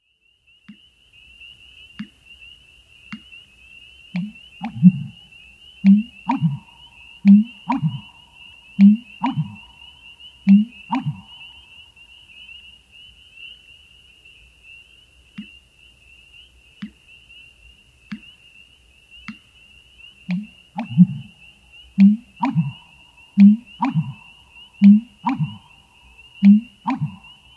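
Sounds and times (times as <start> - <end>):
American bittern calling: 4.1 - 12.6, 20.2 - 27.5.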